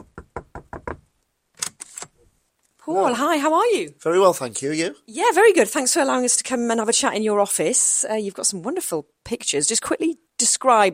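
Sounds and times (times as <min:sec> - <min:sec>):
knocking on an office door: 0:00.0 - 0:01.1
speech: 0:02.9 - 0:10.9.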